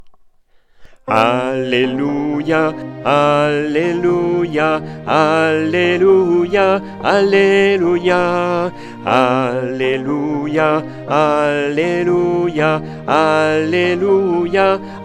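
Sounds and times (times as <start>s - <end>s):
alto voice singing an alleluia: 1.1s - 15.0s.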